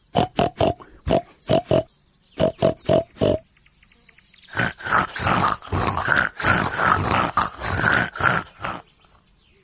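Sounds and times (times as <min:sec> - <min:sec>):
pig grunting: 0:00.2 - 0:03.4, 0:04.5 - 0:09.0.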